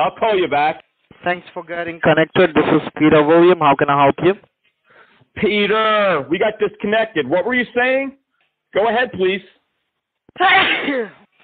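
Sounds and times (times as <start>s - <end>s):
speech: 0.0s - 4.5s, 5.4s - 9.6s, 10.4s - 11.2s
sneeze: 10.4s - 11.3s.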